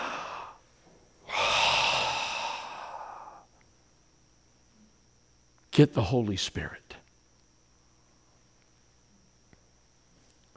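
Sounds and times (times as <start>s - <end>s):
voice imitating a great breath drawn in: 0.0s - 0.6s, 1.3s - 3.5s
speech: 5.8s - 7.0s.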